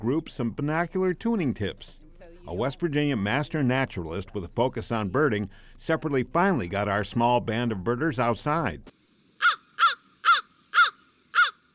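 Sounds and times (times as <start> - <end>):
speech: 0.0 - 9.0
crow cawing in a cold woodland in West Virginia: 9.4 - 11.6.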